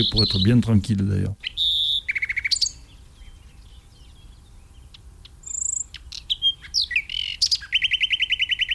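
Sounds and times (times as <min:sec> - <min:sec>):
speech: 0:00.0 - 0:01.5
European robin singing: 0:00.0 - 0:08.7.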